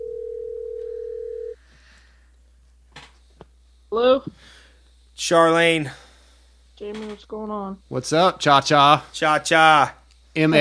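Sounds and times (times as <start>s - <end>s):
telephone dial tone while placing a call: 0.0s - 1.6s
speech: 3.9s - 4.6s, 5.2s - 6.0s, 6.8s - 10.5s.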